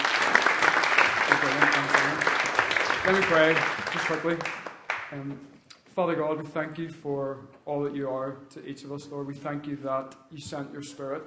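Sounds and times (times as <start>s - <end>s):
audience applause at a church service: 0.0s - 5.1s
speech: 3.1s - 11.2s.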